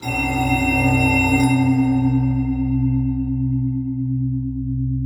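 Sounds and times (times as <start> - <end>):
transition musical tone drone: 0.0 - 4.9.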